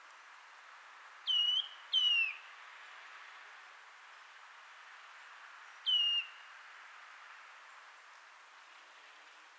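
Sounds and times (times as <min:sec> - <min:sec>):
soft steady hiss: 0:00.0 - 0:09.5
Eurasian nuthatch Sitta europaea giving descending whistled calls: 0:01.3 - 0:02.4.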